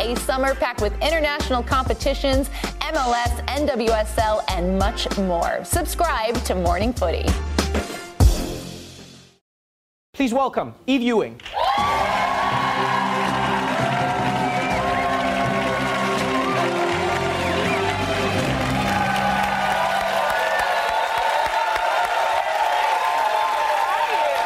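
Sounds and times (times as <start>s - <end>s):
speech: 0.0s - 8.0s, 10.2s - 12.1s
live audience cheering and whooping: 11.4s - 24.4s.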